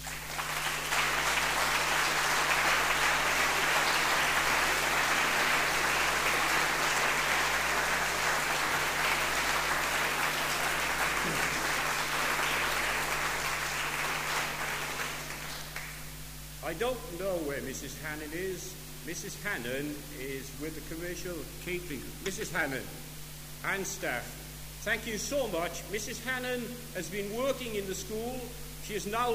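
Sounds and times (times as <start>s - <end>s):
audience applause for committee: 0.0s - 16.0s
speech: 16.7s - 23.0s, 23.6s - 29.3s.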